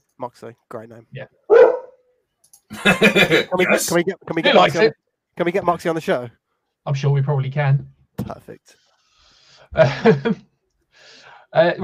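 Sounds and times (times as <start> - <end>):
speech: 0.2 - 1.5, 2.8 - 8.8, 9.7 - 10.5, 11.5 - 11.8
dog barking: 1.5 - 2.0
laughter: 2.7 - 4.9, 9.8 - 10.4.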